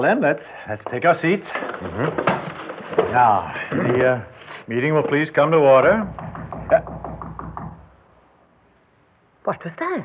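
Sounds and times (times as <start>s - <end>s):
speech: 0.0s - 6.9s, 9.5s - 10.0s
knocking on a door: 5.0s - 8.0s.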